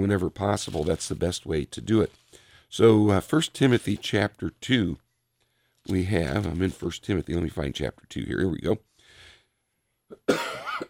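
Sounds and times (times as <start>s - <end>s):
speech: 0.0s - 5.0s, 5.8s - 8.9s, 10.2s - 10.8s
person coughing: 10.1s - 10.8s.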